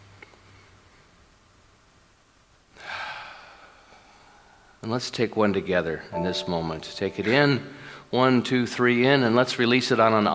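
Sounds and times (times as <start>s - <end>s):
faint noise: 0.0s - 10.3s
deep relaxing breath: 2.8s - 4.8s, 7.7s - 8.1s
speech: 4.8s - 10.3s.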